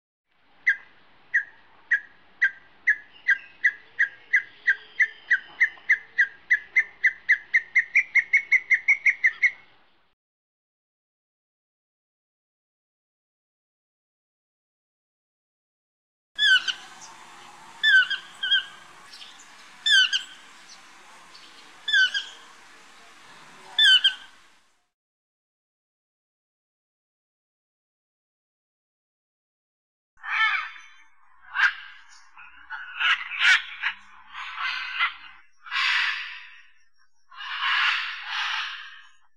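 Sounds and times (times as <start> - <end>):
birds in Costa Rica: 0.6 - 10.0, 16.4 - 24.7, 30.2 - 39.3.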